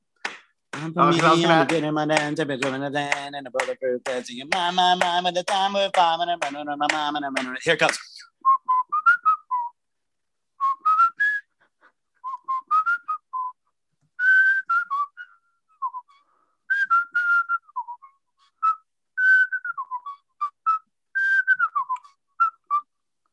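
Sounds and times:
speech: 0:00.8 - 0:08.1
person whistling a lilting melody: 0:08.4 - 0:09.8, 0:10.6 - 0:23.0.

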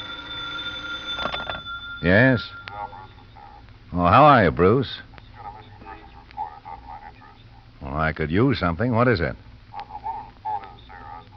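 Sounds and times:
telephone bell ringing: 0:00.0 - 0:03.3
faint steady hum: 0:00.0 - 0:11.3
speech: 0:02.0 - 0:02.6, 0:03.9 - 0:05.1, 0:07.9 - 0:09.4.

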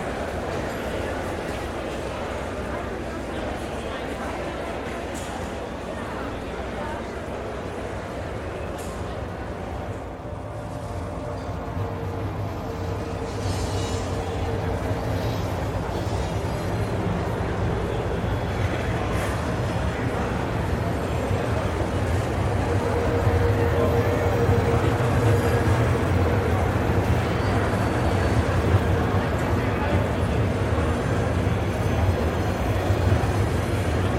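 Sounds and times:
crowd chatter in a busy train station: 0:00.0 - 0:34.1.

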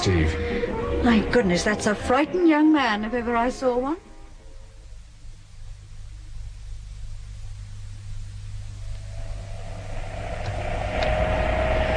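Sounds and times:
speech: 0:00.0 - 0:04.1
taxi engine rumble: 0:08.9 - 0:11.9
taxi road noise: 0:09.0 - 0:11.9.

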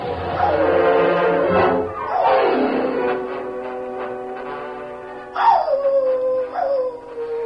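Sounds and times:
dog howling: 0:00.3 - 0:00.9, 0:02.0 - 0:03.2, 0:05.3 - 0:07.4.

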